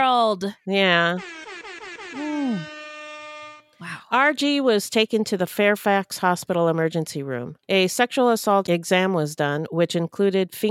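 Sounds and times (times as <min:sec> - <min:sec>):
speech: 0:00.0 - 0:01.5, 0:02.1 - 0:02.8, 0:03.8 - 0:10.6
hip-hop air horn sound effect blaring: 0:00.9 - 0:03.8.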